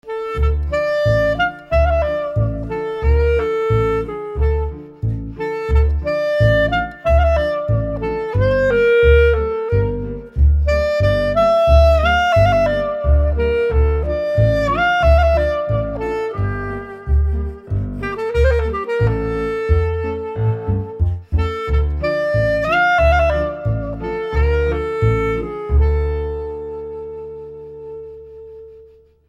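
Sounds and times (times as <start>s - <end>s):
Eastern European clarinet: 0.0s - 29.2s.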